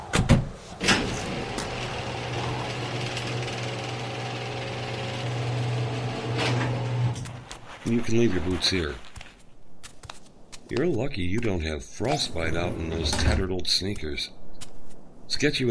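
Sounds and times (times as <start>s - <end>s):
garage door clunks: 0.0s - 7.2s
garage door opener humming as attached home garage door rolls closed: 0.8s - 7.2s
speech: 7.8s - 9.1s, 10.7s - 14.4s, 15.3s - 15.6s.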